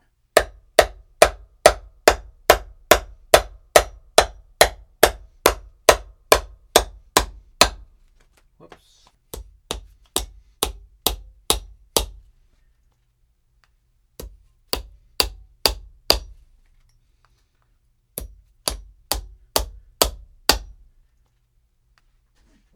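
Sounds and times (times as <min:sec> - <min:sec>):
hammering: 0:00.4 - 0:08.0, 0:09.3 - 0:12.3, 0:14.2 - 0:16.5, 0:18.2 - 0:20.9.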